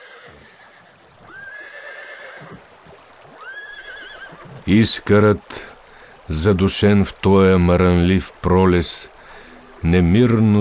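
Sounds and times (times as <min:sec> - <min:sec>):
horse neighing: 0:00.0 - 0:02.6, 0:03.4 - 0:04.7
steady outdoor noise: 0:00.0 - 0:10.6
speech: 0:04.7 - 0:05.7, 0:06.3 - 0:09.1, 0:09.8 - 0:10.6.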